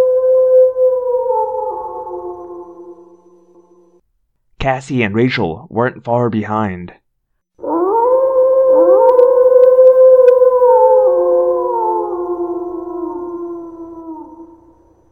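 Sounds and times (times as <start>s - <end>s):
animal howling and yowling: 0.0s - 4.0s, 7.6s - 15.1s
speech: 4.6s - 7.0s.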